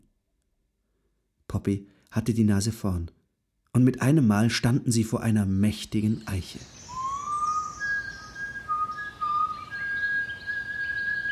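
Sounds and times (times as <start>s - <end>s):
soft hiss: 0.1s - 11.3s
speech: 1.6s - 6.8s
person whistling a thin wavering melody: 6.9s - 11.3s.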